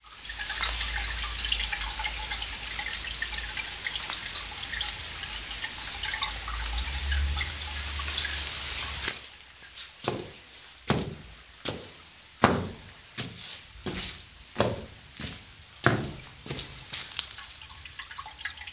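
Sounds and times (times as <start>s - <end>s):
water: 0.0s - 18.7s.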